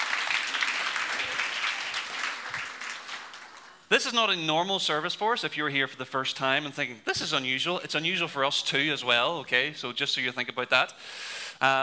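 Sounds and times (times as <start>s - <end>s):
cheers: 0.0s - 3.8s
crowd applauding with many hands clapping: 0.0s - 3.9s
speech: 3.9s - 11.8s.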